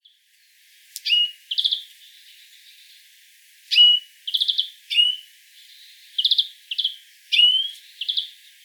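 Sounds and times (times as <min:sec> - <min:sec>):
European greenfinch Chloris chloris sharp whistled notes: 0:01.0 - 0:01.8, 0:03.7 - 0:05.2, 0:06.2 - 0:08.3.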